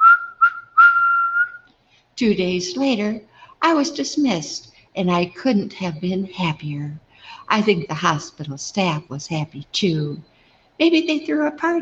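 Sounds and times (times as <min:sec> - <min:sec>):
person whistling a brief cheerful phrase: 0:00.0 - 0:01.7
speech: 0:02.2 - 0:11.8.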